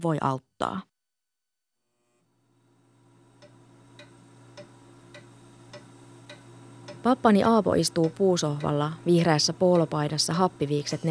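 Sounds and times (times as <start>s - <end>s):
speech: 0.0s - 0.9s, 7.0s - 11.0s
low constant hum: 2.6s - 11.0s
old grandfather clock ticking: 3.4s - 11.0s.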